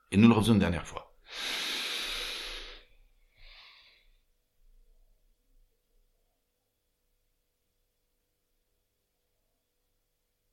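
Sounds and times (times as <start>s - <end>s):
speech: 0.1s - 1.6s
slow breathy exhale during a relaxation breathing exercise: 1.3s - 4.2s.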